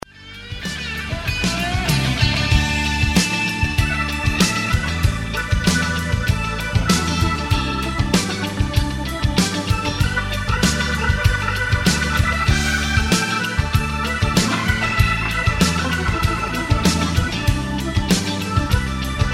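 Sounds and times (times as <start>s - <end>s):
organ solo: 0.0s - 19.3s.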